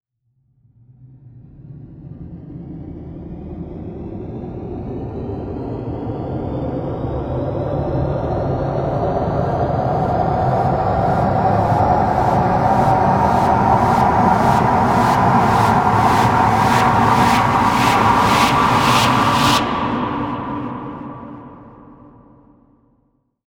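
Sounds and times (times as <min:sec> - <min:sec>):
tense mysterious background ambience: 0:05.4 - 0:22.5.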